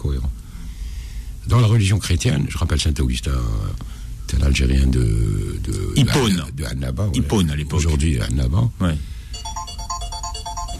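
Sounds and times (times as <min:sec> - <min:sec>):
low rumble: 0:00.0 - 0:10.7
speech: 0:01.5 - 0:09.1
mobile phone ringtone during live broadcast: 0:09.3 - 0:10.7.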